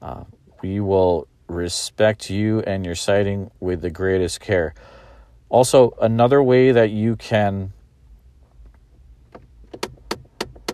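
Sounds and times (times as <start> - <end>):
steady low rumble inside the car: 0.0 - 10.7
speech: 0.1 - 7.8
car heater starting up with sharp mechanical clicks: 8.5 - 10.7.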